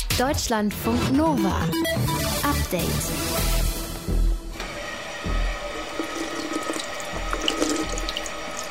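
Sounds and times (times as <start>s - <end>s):
speech: 0.2s - 3.6s
water pouring steadily from a running tap: 4.9s - 8.6s.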